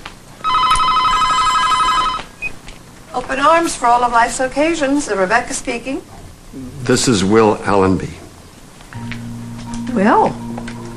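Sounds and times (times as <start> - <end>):
telephone ringing with electronic trill: 0.4 - 2.5
speech: 3.2 - 8.2, 10.0 - 10.4.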